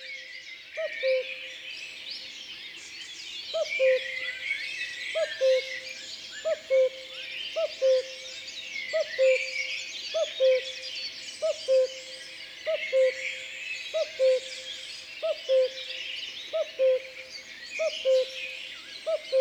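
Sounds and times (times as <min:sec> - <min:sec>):
common cuckoo in the Drome: 0:00.8 - 0:01.4, 0:05.1 - 0:05.9, 0:06.4 - 0:08.3, 0:08.9 - 0:10.8, 0:11.4 - 0:14.6, 0:15.2 - 0:15.9, 0:16.5 - 0:18.5, 0:19.1 - 0:19.3.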